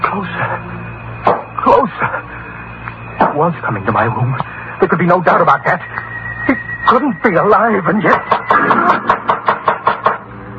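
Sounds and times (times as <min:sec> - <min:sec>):
low constant hum: 0:00.0 - 0:10.5
speech: 0:00.1 - 0:00.8, 0:03.4 - 0:09.2
hollow knocking at a door: 0:08.1 - 0:10.2.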